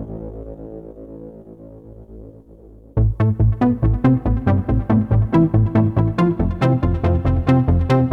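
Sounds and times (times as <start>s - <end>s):
Redsound Darkstar synthesizer sounds with external effects: 3.0s - 8.1s.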